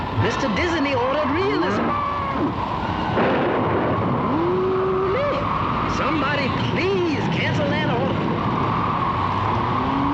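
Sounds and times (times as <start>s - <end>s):
roaring hurricane wind: 0.0s - 10.1s
speech: 0.2s - 2.8s
hurricane thunder rumbling: 3.2s - 4.4s.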